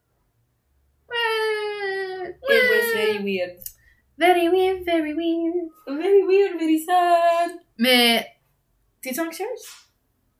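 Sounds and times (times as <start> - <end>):
child wailing outside: 1.1 - 3.3
speech: 2.5 - 8.3, 9.0 - 9.9.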